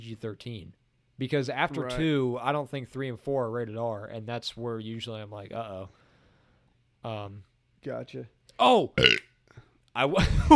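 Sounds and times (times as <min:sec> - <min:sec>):
speech: 0:00.1 - 0:06.0, 0:07.0 - 0:10.5
loud burp into the microphone: 0:09.0 - 0:09.2.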